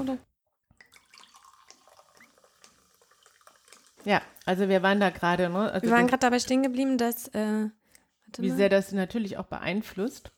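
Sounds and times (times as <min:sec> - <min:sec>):
speech: 0:00.0 - 0:00.3, 0:04.0 - 0:10.3
water poured into a glass: 0:00.8 - 0:05.6.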